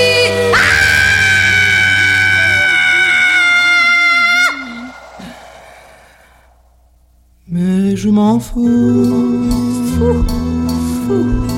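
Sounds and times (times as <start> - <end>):
loud human scream: 0.3 - 6.4
speech: 8.2 - 10.5, 11.1 - 11.5.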